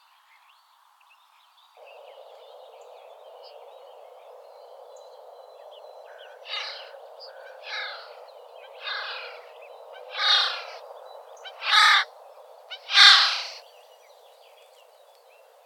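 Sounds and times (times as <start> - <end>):
Eurasian jay giving harsh rasping screeches: 10.2 - 10.8, 11.7 - 12.0, 12.9 - 13.6.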